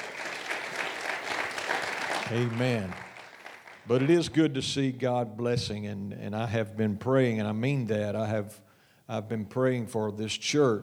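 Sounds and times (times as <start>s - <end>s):
congregation applauding: 0.0s - 4.5s
speech: 2.3s - 3.1s, 3.9s - 10.8s.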